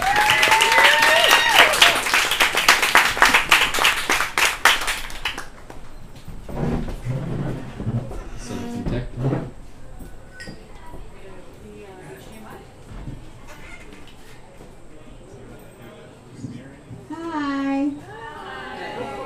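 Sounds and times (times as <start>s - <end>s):
audience at a presentation applauding a presenter: 0.0s - 5.9s
audience murmuring and shuffling: 7.0s - 19.2s.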